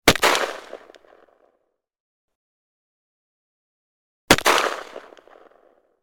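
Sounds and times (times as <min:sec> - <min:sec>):
Savage 10 rifle gunshot in .300 Blackout: 0:00.0 - 0:01.2, 0:04.3 - 0:05.8.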